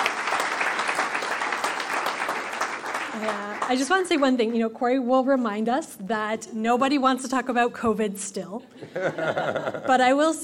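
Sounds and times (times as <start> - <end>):
audience round of applause: 0.0 - 4.3
speech: 3.2 - 10.4
laughter: 8.8 - 10.1.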